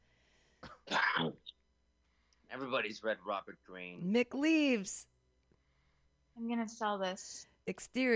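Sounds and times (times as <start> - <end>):
person coughing: 0.6 - 1.5
speech: 2.6 - 5.1, 6.4 - 8.1.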